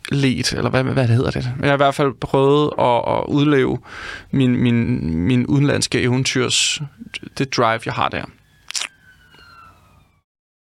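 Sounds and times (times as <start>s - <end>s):
speech: 0.1s - 8.4s
ambulance siren wailing outside: 6.2s - 10.3s.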